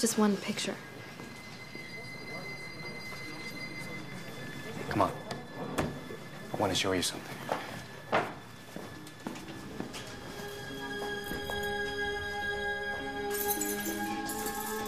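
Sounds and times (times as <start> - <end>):
speech: 0.0 - 0.9, 4.9 - 5.2, 6.6 - 7.4
steady tonal drone: 0.0 - 14.8
footsteps of people walking to a storeroom: 5.3 - 13.3.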